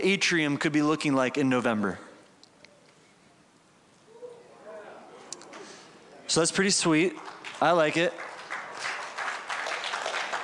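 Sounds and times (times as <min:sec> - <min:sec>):
speech: 0:00.0 - 0:02.1, 0:06.3 - 0:08.3
crowd applauding: 0:07.2 - 0:10.4.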